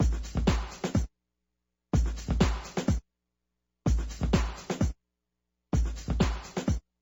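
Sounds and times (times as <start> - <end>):
breakbeat: 0.0 - 1.1, 2.0 - 3.0, 3.9 - 5.0, 5.8 - 6.8.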